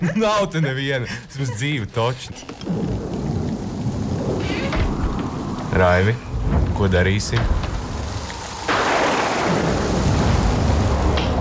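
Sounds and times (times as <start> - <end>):
speech: 0.0 - 3.2, 5.7 - 7.7
heavy rain: 1.3 - 11.3
loud crack of thunder rolling into a deep rumble: 2.5 - 11.3.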